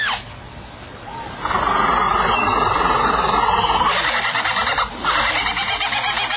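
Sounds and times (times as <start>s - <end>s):
bird mimicking other birds' songs: 1.5s - 6.3s.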